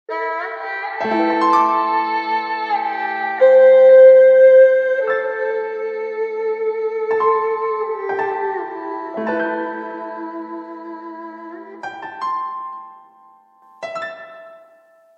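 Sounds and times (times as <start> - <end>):
erhu: 0.1 - 12.9.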